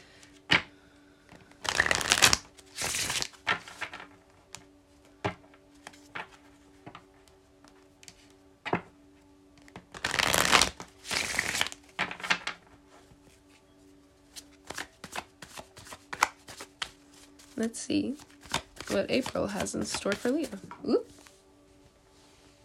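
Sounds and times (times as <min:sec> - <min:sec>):
deck of tarot cards being shuffled: 0:01.4 - 0:04.7, 0:09.7 - 0:12.5, 0:14.3 - 0:21.3
speech: 0:17.6 - 0:18.3, 0:18.9 - 0:21.1.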